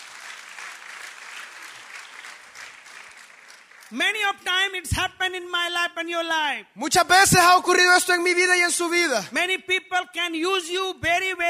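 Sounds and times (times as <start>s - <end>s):
audience applauding: 0.0s - 4.1s
speech: 3.9s - 11.4s.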